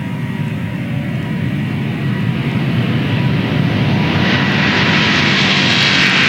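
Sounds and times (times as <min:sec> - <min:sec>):
Boeing 787 jet airliner taking off at full thrust: 0:00.0 - 0:06.2.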